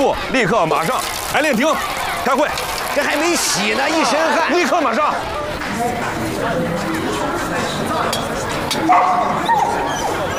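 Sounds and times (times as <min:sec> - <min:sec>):
speech: 0:00.0 - 0:09.5
murmuring voices at a meeting in a rehearsal hall: 0:00.0 - 0:10.3
dog barking and yipping: 0:08.9 - 0:09.9.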